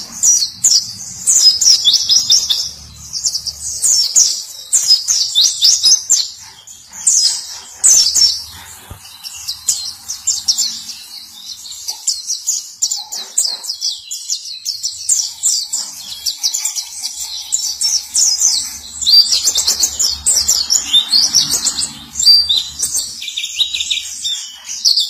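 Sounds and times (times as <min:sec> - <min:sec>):
white-eye song of high twittering chirps and trills: 0:00.0 - 0:25.0.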